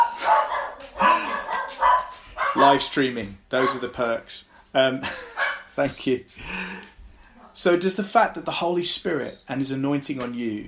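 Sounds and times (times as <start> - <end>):
dogs barking: 0.0 - 2.9, 3.6 - 4.0, 5.3 - 5.7
speech: 2.6 - 6.6, 7.6 - 10.6.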